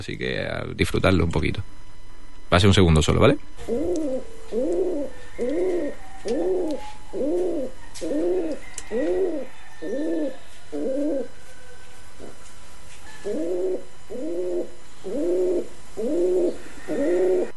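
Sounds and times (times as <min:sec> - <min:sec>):
speech: 0:00.0 - 0:01.9, 0:02.5 - 0:08.3
faint ambience: 0:00.0 - 0:17.5
pigeon cooing: 0:03.6 - 0:17.5.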